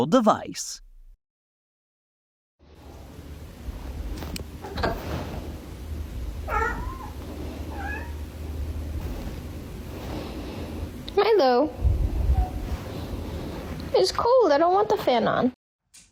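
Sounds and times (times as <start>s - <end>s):
speech: 0.0s - 0.8s, 11.3s - 11.9s, 13.9s - 15.6s
low hum: 2.8s - 15.4s
cat meowing: 6.4s - 8.3s.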